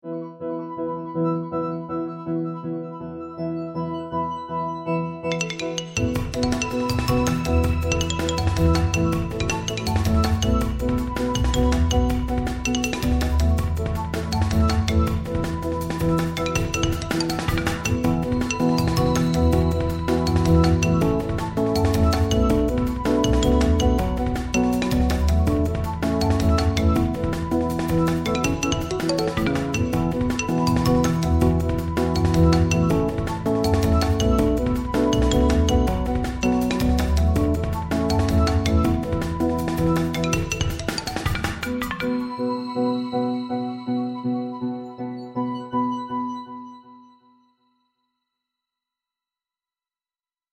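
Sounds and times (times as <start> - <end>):
Rhodes electric piano: 0.0 - 47.2
xylophone: 5.2 - 15.5, 16.2 - 39.3, 39.9 - 43.6.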